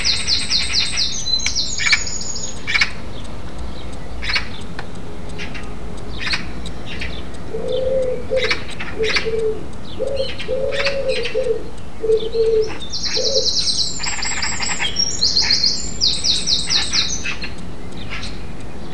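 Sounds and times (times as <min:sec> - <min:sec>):
harsh clicking chatter of magpies: 0:00.0 - 0:18.9
pigeon low soft coos: 0:07.5 - 0:13.6.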